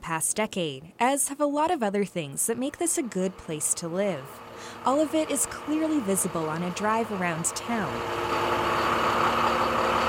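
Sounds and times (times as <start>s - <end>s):
speech: 0.1s - 8.9s
large bus engine idling: 2.7s - 10.0s.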